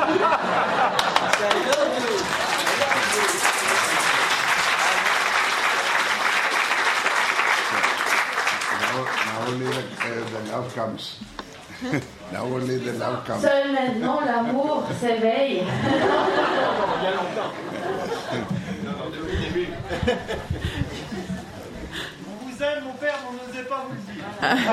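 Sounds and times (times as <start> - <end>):
laughter: 0.0 - 5.1, 11.7 - 12.4, 13.8 - 22.2, 23.9 - 24.7
crowd applauding in a room: 0.7 - 10.9
speech: 10.8 - 18.4, 23.6 - 24.7.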